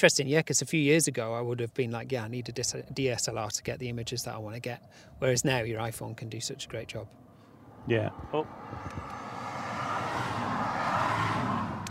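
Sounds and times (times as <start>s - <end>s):
speech: 0.0s - 7.3s, 7.9s - 9.2s
two small hatchback cars passing by: 6.4s - 11.8s.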